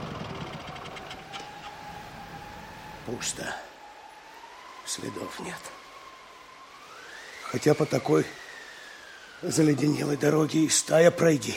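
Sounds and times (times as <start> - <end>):
motorcycle engine droning: 0.0 - 2.6
speech: 3.1 - 3.7, 4.9 - 5.8, 7.5 - 8.4, 9.4 - 11.5.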